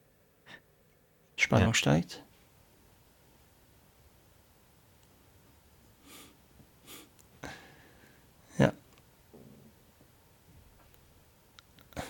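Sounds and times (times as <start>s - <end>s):
speech: 1.5s - 2.3s
man breathing heavily: 6.0s - 8.3s.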